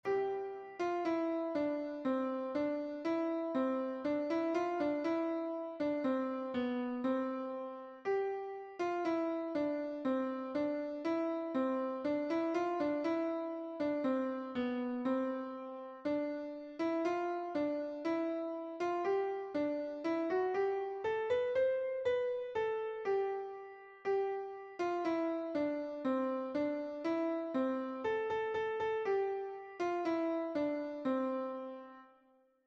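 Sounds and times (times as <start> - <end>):
Christmas carol played on piano: 0.0 - 32.2.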